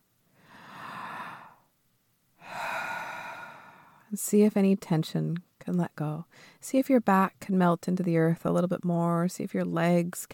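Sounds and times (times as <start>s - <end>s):
deep breath drawn during a guided meditation: 0.3s - 1.7s, 2.4s - 4.1s, 6.3s - 6.6s
speech: 4.1s - 10.3s.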